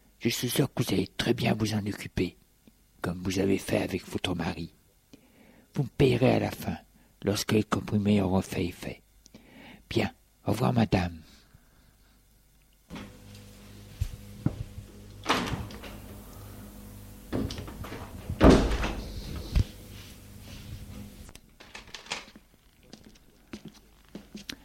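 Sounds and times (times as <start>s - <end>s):
speech: 0.2s - 2.4s, 3.0s - 4.8s, 5.8s - 9.0s, 9.9s - 11.2s
shuffling footsteps: 12.9s - 21.4s, 22.2s - 24.6s
door slamming shut: 14.4s - 19.8s.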